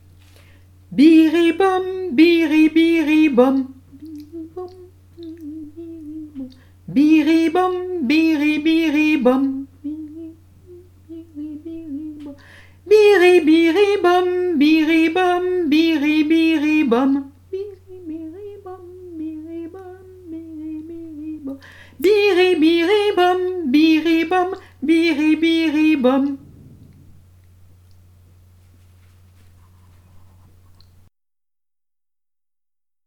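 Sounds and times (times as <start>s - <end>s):
person singing in progressive imitation learning: 0.9s - 26.5s.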